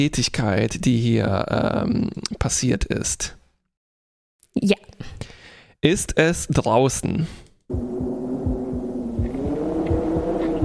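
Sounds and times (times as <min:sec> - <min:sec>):
speech: 0:00.0 - 0:03.4, 0:04.6 - 0:05.2, 0:05.8 - 0:08.2
steady rhythmic heartbeat thumping: 0:07.7 - 0:10.6.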